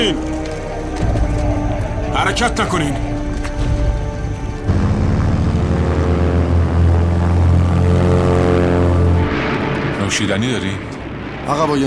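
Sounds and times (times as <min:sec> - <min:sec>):
speech: 0:00.0 - 0:00.4, 0:02.2 - 0:03.1, 0:10.1 - 0:11.8
propeller airplane engine droning: 0:00.0 - 0:11.7.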